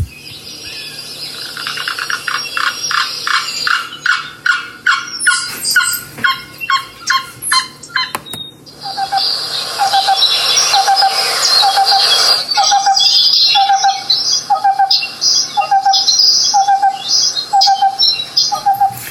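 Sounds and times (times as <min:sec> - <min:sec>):
other birds: 0:00.0 - 0:19.1
black-billed cuckoo rapid staccato calls: 0:01.3 - 0:19.1
black-billed cuckoo soft hollow low coos: 0:08.8 - 0:19.1.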